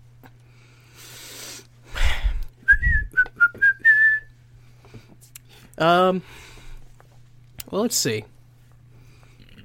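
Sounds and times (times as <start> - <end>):
faint low hum: 0.0 - 9.6
person whistling a short bright melody: 2.6 - 4.3
speech: 5.8 - 6.5, 7.7 - 8.3.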